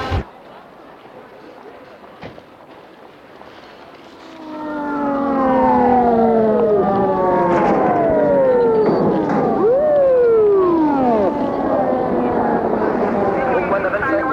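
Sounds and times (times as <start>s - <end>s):
quiet street background: 0.0s - 14.3s
white ambulance siren wailing: 4.1s - 14.3s.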